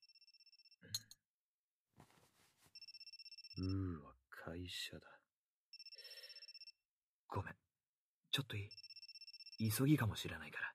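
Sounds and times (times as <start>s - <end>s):
phone ringing with electronic trilling: 0.0s - 0.8s, 2.7s - 3.7s, 5.7s - 6.8s, 8.7s - 9.8s
rustling handling noise: 2.0s - 2.8s
speech: 3.6s - 5.2s, 7.3s - 7.6s, 8.4s - 8.8s, 9.6s - 10.7s.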